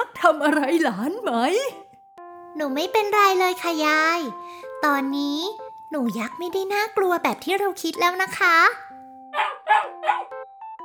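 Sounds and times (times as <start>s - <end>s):
speech: 0.2s - 1.9s, 2.6s - 8.8s
puppy barking: 9.3s - 10.4s.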